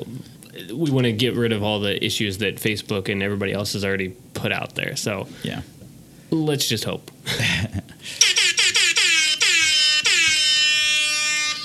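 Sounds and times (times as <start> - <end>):
speech: 0.0 - 8.2
rap air horn sound effect blasts: 8.2 - 11.6.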